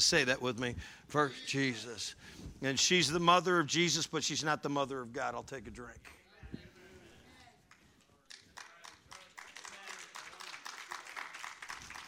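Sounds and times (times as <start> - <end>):
speech: 0.0 - 6.6
light hesitant golf-clap applause from a small audience: 7.7 - 12.0.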